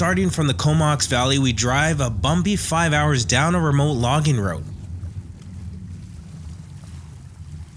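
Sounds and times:
speech: 0:00.0 - 0:04.7
water taxi engine droning on Vancouver Island: 0:00.0 - 0:07.7
wind: 0:00.0 - 0:07.7.

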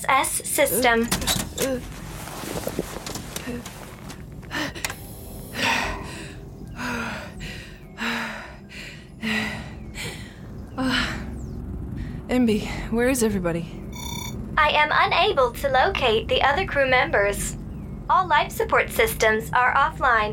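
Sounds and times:
speech: 0:00.1 - 0:03.8, 0:12.4 - 0:13.8, 0:14.6 - 0:20.3
gasping laboured breaths of someone short of breath: 0:04.4 - 0:11.3.

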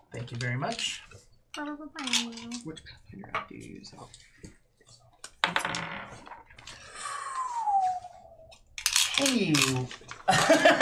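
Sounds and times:
speech: 0:00.3 - 0:04.3, 0:05.5 - 0:06.5, 0:09.2 - 0:10.7
dice rolled on a table during a tabletop role-playing game: 0:05.2 - 0:06.8, 0:08.8 - 0:10.3
laughter: 0:10.3 - 0:10.7.

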